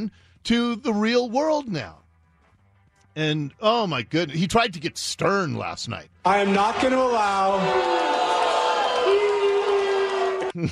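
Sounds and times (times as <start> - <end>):
speech: 0.0 - 2.0, 3.2 - 8.1
large crowd booing a speaker: 6.3 - 10.6.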